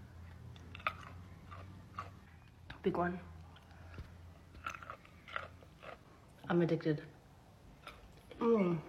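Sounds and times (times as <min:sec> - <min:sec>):
low steady hum: 0:00.0 - 0:08.8
crunchy food being chewed: 0:00.3 - 0:02.6, 0:03.4 - 0:06.4
speech: 0:02.8 - 0:03.3, 0:06.5 - 0:07.2, 0:08.4 - 0:08.8.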